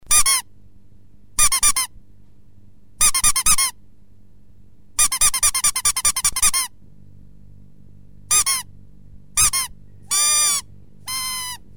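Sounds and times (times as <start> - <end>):
rubber duck squeak: 0.0 - 0.5, 1.4 - 1.9, 3.0 - 3.8, 5.0 - 6.8, 8.3 - 8.7, 9.4 - 11.7.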